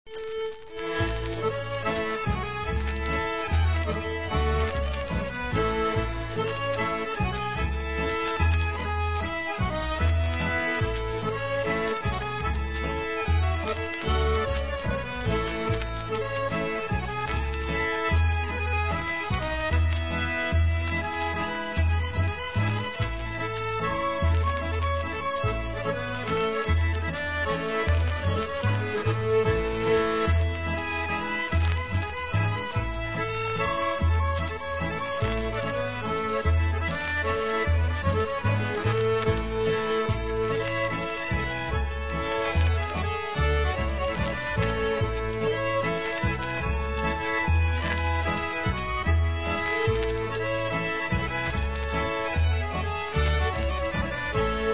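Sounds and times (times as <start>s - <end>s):
folk dance tune: 0.0s - 54.7s.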